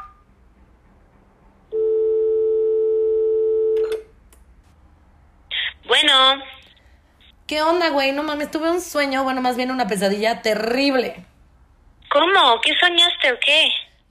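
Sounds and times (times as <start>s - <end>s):
steady phone tone: 1.7s - 4.1s
speech: 7.5s - 11.3s, 12.1s - 14.0s.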